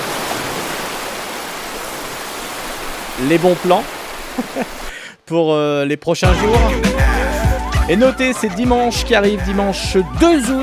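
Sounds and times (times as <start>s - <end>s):
steady rush of waves: 0.0s - 5.0s
speech: 3.2s - 7.1s, 7.9s - 10.6s.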